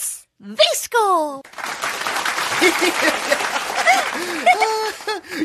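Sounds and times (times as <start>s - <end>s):
speech: 0.5s - 1.5s, 2.6s - 3.5s
room full of people clapping in dense sustained applause: 1.5s - 5.4s
scattered cheers and excited high-pitched voices: 1.6s - 5.3s
laughter: 2.5s - 5.4s.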